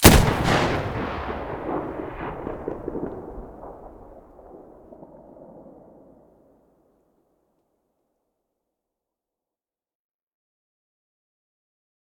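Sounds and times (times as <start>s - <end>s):
M700 rifle muzzle gunshot: 0.0s - 4.8s.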